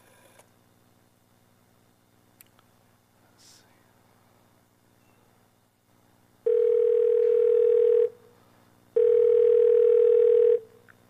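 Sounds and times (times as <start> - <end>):
electronic telephone tone through a mobile phone's receiver: 6.5 - 8.1, 9.0 - 10.7.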